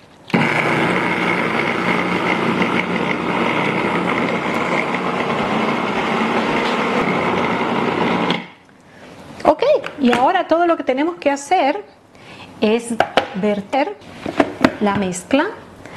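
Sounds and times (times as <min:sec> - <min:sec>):
food processor grinding a strawberry sauce mixture: 0:00.3 - 0:08.6
speech: 0:10.1 - 0:11.9, 0:12.6 - 0:14.1, 0:14.8 - 0:15.6.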